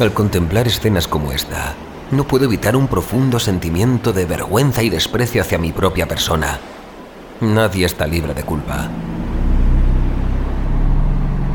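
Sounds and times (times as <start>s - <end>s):
speech: 0.0s - 6.7s, 7.4s - 9.2s
garbage truck engine roaring: 8.9s - 11.5s.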